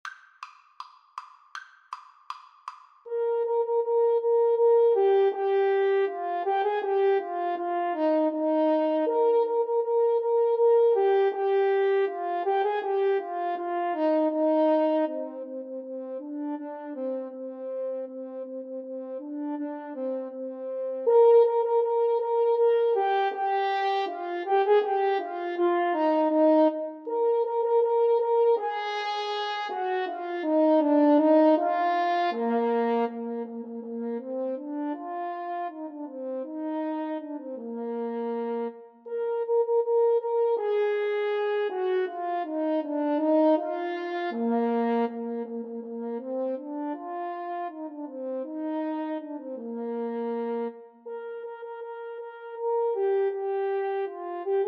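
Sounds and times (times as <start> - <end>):
French horn duet playing a march: 3.1 - 54.6.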